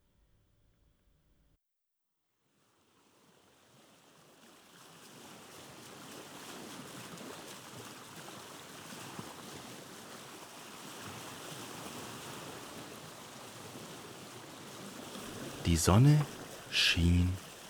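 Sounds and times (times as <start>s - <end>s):
sea water splashing and lapping around a rowing boat: 3.7s - 13.0s
speech: 15.7s - 17.4s.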